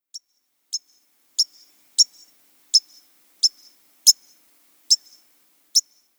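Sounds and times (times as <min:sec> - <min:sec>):
white-crowned sparrow call: 0:00.2 - 0:05.2.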